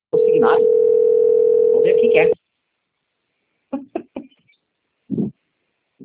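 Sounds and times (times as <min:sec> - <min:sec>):
ringback tone of an outgoing telephone call: 0:00.2 - 0:02.4
speech: 0:00.3 - 0:00.9, 0:01.8 - 0:02.4.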